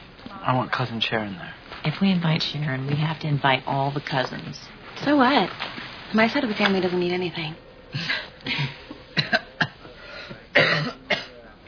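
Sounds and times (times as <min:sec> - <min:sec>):
speech: 0:00.4 - 0:08.8
person coughing: 0:07.9 - 0:11.5
throat clearing: 0:08.0 - 0:11.5.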